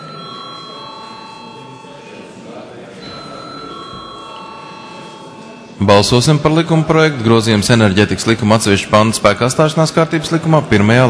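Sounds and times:
electric bell ringing in a parliament chamber before a vote: 0.0 - 2.3, 3.0 - 5.8
continuous noise: 0.0 - 11.0
speech: 5.8 - 11.0.

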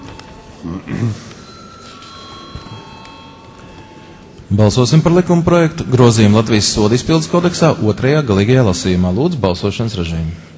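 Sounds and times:
speech: 0.6 - 1.4, 4.5 - 10.5
parliament chamber bell ringing before a vote in the Latvian Saeima: 1.3 - 7.7.

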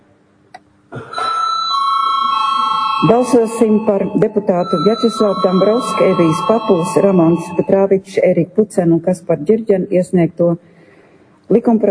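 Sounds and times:
chairperson's bell ringing in a parliament chamber: 1.2 - 7.9
speech: 3.0 - 10.7, 11.5 - 11.8.

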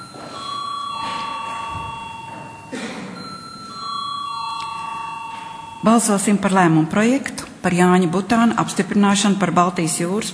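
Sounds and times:
electric bell rung in a parliament chamber to call a vote: 0.0 - 6.9
speech: 5.8 - 10.3.

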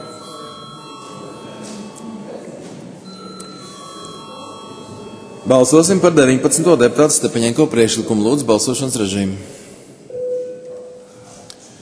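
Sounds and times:
continuous electric voting bell ringing in a parliament chamber: 0.0 - 2.4, 3.0 - 6.4
speech: 5.4 - 9.6.

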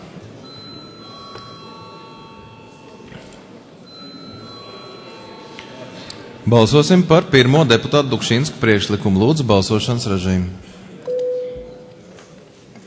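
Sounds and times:
room noise in a large hall: 0.0 - 12.8
parliament bell ringing before a vote: 0.4 - 9.0
speech: 6.5 - 10.8.

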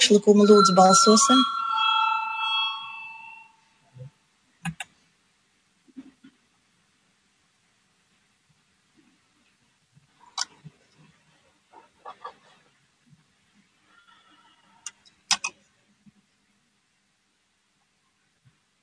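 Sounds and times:
parliament voting bell ringing: 0.0 - 3.7
speech: 0.1 - 1.6
scattered clicks and knocks: 4.6 - 4.9.

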